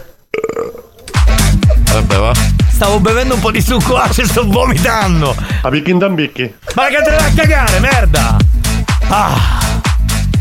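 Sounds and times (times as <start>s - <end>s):
person burping with a rough gurgling tone: 0.3s - 2.5s
speech: 2.0s - 8.4s, 9.1s - 9.6s.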